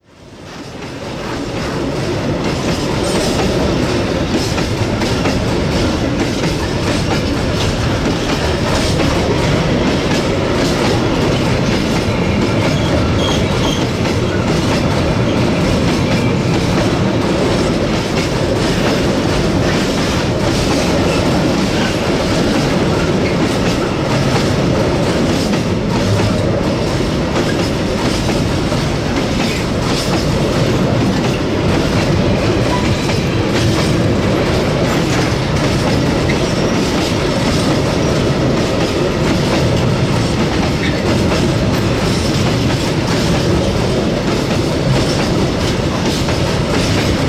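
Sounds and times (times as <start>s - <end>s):
train wheels on rail joints: 0.1s - 47.2s.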